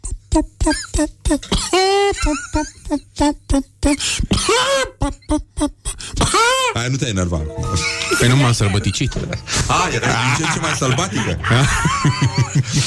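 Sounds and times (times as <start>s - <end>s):
person imitating a wild hen coughing: 0.3s - 6.8s
speech: 0.4s - 12.8s
laughter: 7.7s - 12.8s.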